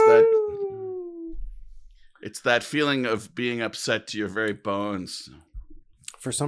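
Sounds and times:
person's voice mimicking a ghostly howl: 0.0 - 1.3
speech: 2.2 - 5.5, 6.2 - 6.4.

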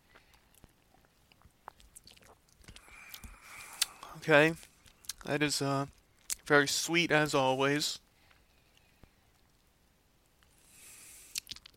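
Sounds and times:
small wet mouth clicks and lip noises: 0.1 - 5.3, 6.2 - 6.5, 11.1 - 11.7
speech: 4.2 - 8.0.

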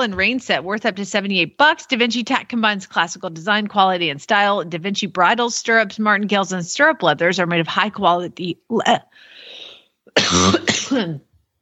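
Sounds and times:
speech: 0.0 - 9.3, 10.2 - 11.3
faint breath: 9.1 - 10.0
person coughing and choking from allergies: 10.1 - 11.4.

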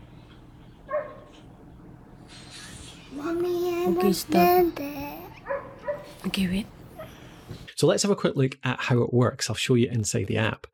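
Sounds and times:
dog short high bark: 0.9 - 1.4, 5.4 - 6.2
speech: 3.2 - 5.1, 6.2 - 6.8, 7.8 - 10.7.

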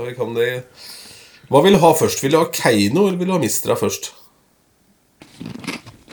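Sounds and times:
speech: 0.0 - 4.2
potato chips crunching as they are eaten: 5.2 - 6.1
snack bag crinkling: 5.2 - 6.1.

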